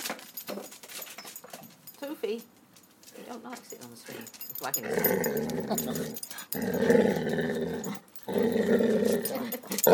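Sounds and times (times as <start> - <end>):
speech: 2.0 - 2.6, 3.2 - 8.1
dog growling: 4.7 - 9.9.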